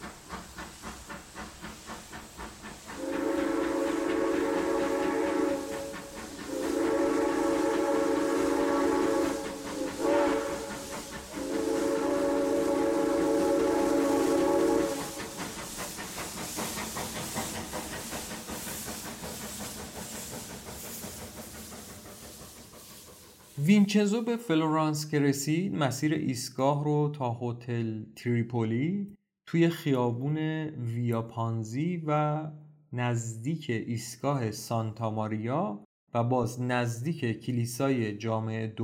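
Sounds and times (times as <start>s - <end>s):
steam train hissing rumble pulling away in Italy: 0.0s - 24.0s
steam train whistle blasts in Italy: 3.0s - 15.4s
speech: 23.7s - 38.8s.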